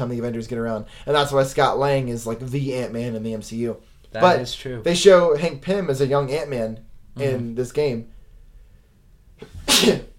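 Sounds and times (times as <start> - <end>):
speech: 0.0 - 8.1, 9.4 - 10.1
loud sneeze: 9.4 - 10.1.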